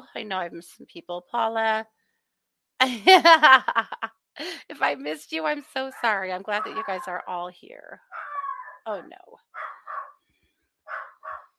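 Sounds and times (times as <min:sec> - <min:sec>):
speech: 0:00.2 - 0:02.0, 0:02.8 - 0:08.2, 0:08.8 - 0:09.7
laughter: 0:02.8 - 0:04.8
young dogs yipping: 0:08.1 - 0:08.9, 0:09.6 - 0:10.1, 0:10.9 - 0:11.5.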